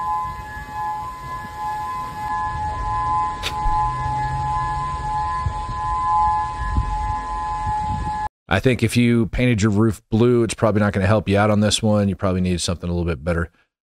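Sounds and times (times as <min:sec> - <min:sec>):
outdoor civil defense sirens wailing: 0:00.0 - 0:08.3
sharp click: 0:03.4 - 0:03.8
speech: 0:08.5 - 0:13.6.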